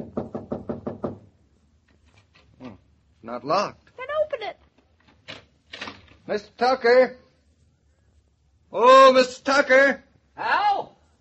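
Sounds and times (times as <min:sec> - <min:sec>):
knocking on a wooden door: 0:00.0 - 0:01.3
speech: 0:03.3 - 0:03.8, 0:06.3 - 0:07.2, 0:08.7 - 0:10.6.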